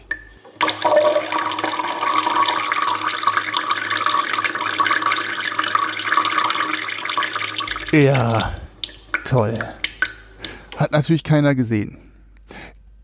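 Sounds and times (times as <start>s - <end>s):
dog urinating into a plant pot: 0.6s - 10.8s
speech: 8.0s - 8.6s, 9.3s - 9.8s, 10.8s - 12.1s.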